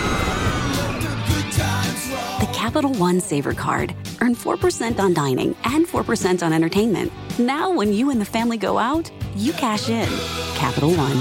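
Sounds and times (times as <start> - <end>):
loud rushing rumble: 0.0 - 1.8
crowd of people screaming on amusement park ride: 0.0 - 2.4
speech: 2.6 - 11.2.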